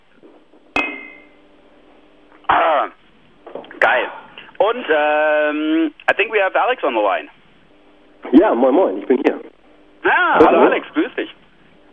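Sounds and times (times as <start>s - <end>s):
low hum: 0.0s - 11.9s
glasses clinking in a toast: 0.8s - 1.4s
speech: 4.8s - 7.4s, 8.3s - 11.4s.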